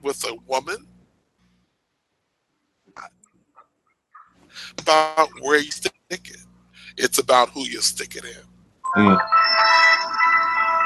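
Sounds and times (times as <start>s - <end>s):
speech: 0.0s - 0.8s, 4.9s - 6.4s, 7.0s - 9.8s
phone ringtone with bright electronic melody: 8.9s - 10.8s.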